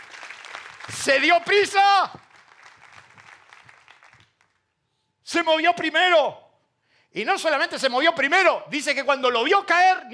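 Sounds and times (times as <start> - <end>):
audience applauding during a sermon: 0.0 - 4.6
speech: 0.9 - 2.2, 5.3 - 6.4, 7.1 - 10.1.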